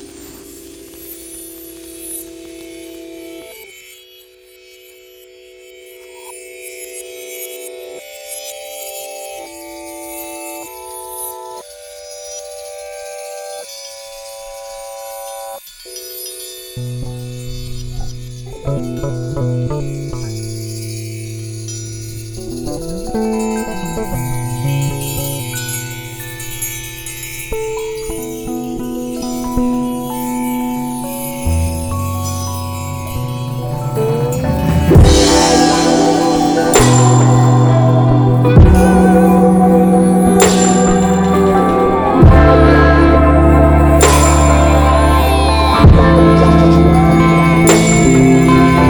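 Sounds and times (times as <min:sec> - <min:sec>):
hip hop instrumental: 0:22.5 - 0:48.8.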